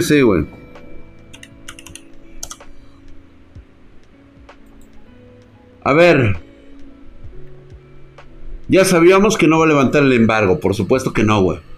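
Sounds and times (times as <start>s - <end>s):
speech: 0.0s - 0.6s, 5.8s - 6.4s, 8.7s - 11.7s
typing on a computer keyboard: 1.3s - 2.7s.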